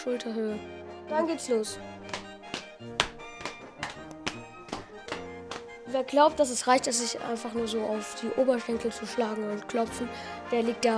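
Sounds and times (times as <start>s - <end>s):
speech: 0.0s - 2.1s, 5.9s - 10.9s
faint instrumental music: 0.0s - 10.9s
boys stamping feet in a folk dance: 1.9s - 6.0s.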